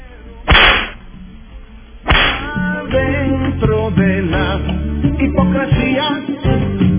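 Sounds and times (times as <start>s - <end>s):
whip cracks: 0.5s - 1.0s, 2.1s - 2.6s
speech: 2.9s - 6.9s.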